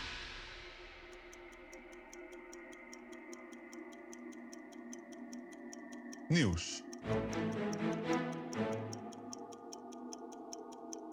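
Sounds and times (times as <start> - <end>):
clock ticking: 0.7 - 11.1
speech: 6.3 - 8.7.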